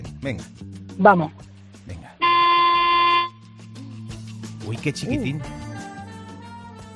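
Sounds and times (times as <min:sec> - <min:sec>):
speech: 0:00.2 - 0:01.5, 0:04.7 - 0:05.6
horn of a small 2009 car honking: 0:02.2 - 0:03.4.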